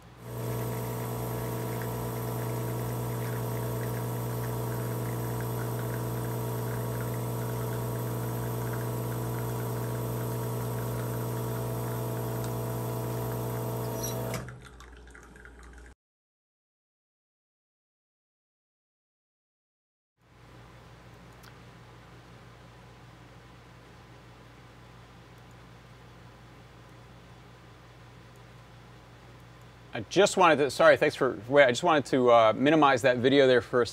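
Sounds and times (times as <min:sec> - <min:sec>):
espresso machine pump humming while pulling a double shot: 0:00.0 - 0:15.8
speech: 0:30.0 - 0:33.9.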